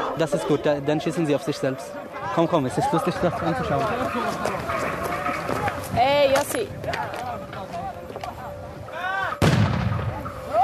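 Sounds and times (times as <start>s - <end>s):
speech: 0.2s - 5.1s, 6.0s - 7.6s
grenade explosion: 9.4s - 10.5s.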